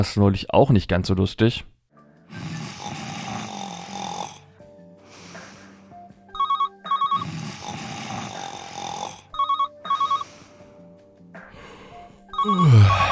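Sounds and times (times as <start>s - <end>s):
speech: 0.0s - 1.7s
telephone ringing with bright electronic trill: 6.3s - 7.2s, 9.3s - 10.3s, 12.3s - 13.0s.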